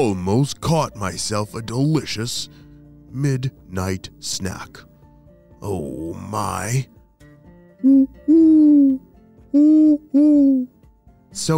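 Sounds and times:
speech: 0:00.0 - 0:04.9, 0:05.6 - 0:06.9, 0:07.8 - 0:11.5
person imitating owl hoots: 0:07.8 - 0:10.7.

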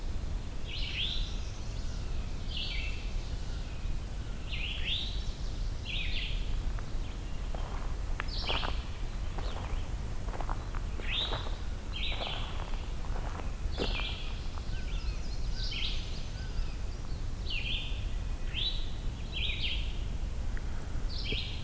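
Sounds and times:
low outdoor rumble: 0:00.0 - 0:21.6
eastern towhee calling: 0:07.1 - 0:16.8.

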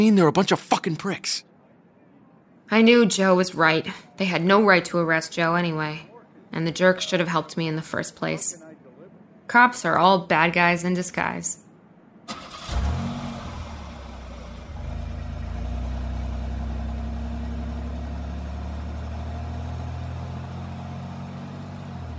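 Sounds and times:
speech: 0:00.0 - 0:01.5, 0:02.7 - 0:08.6, 0:09.5 - 0:11.6
car engine starting with a short crank: 0:12.3 - 0:22.1.

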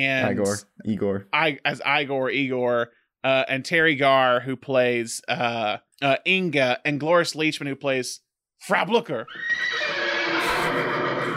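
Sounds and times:
speech: 0:00.0 - 0:10.0
horse neighing: 0:09.3 - 0:11.3.

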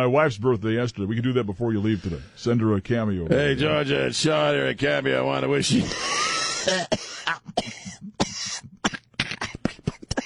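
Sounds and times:
speech: 0:00.0 - 0:07.9
harsh coughing: 0:05.7 - 0:10.2
throat clearing: 0:06.6 - 0:10.2.

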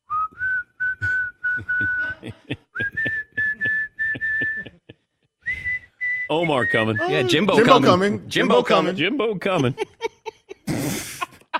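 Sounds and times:
person whistling a tune: 0:00.0 - 0:07.4
laughter: 0:01.0 - 0:04.9, 0:06.5 - 0:11.5
speech: 0:06.3 - 0:10.0.

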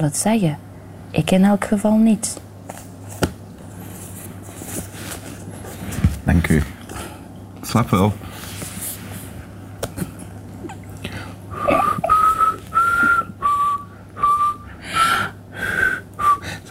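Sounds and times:
speech: 0:00.0 - 0:02.8, 0:06.3 - 0:06.8, 0:07.7 - 0:08.3
quiet room noise: 0:00.0 - 0:16.6
person whistling a short melody: 0:11.6 - 0:14.7, 0:15.8 - 0:16.4.

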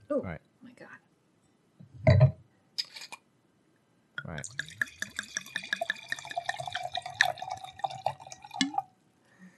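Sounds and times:
speech: 0:00.1 - 0:00.5
liquid glugging into a container: 0:04.4 - 0:08.9.

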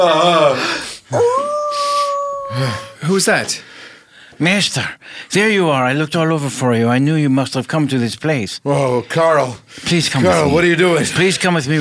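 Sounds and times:
speech: 0:00.0 - 0:01.8, 0:02.5 - 0:03.7, 0:04.4 - 0:11.8
dog howling in a kennel: 0:01.1 - 0:02.9.

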